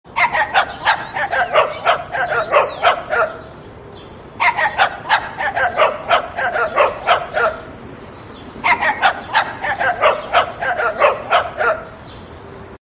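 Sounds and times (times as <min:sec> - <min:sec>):
dog barking: 0:00.2 - 0:03.5, 0:04.4 - 0:07.7, 0:08.6 - 0:12.0.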